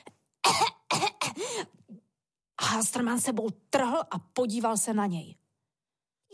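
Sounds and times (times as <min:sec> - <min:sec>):
loud deliberate throaty coughing: 0:00.4 - 0:01.4
speech: 0:02.7 - 0:05.4.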